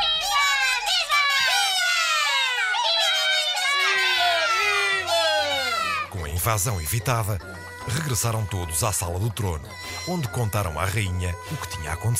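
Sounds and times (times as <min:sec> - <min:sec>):
dense crowd of high-pitched warrior ant voices shouting and cheering: 0:00.0 - 0:08.6
speech: 0:06.4 - 0:12.1.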